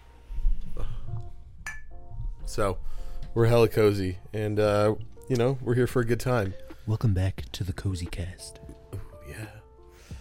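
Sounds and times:
two mugs of hot cocoa clinking in a toast: 0:01.6 - 0:02.0
speech: 0:02.5 - 0:08.6, 0:09.3 - 0:09.6.

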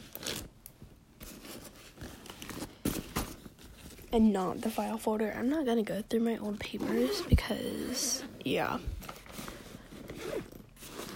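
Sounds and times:
rustling crinkly handling of a zippered binder: 0:00.0 - 0:11.1
speech: 0:04.1 - 0:08.9
zipper of a Trapper Keeper binder rasping open: 0:06.8 - 0:11.1.

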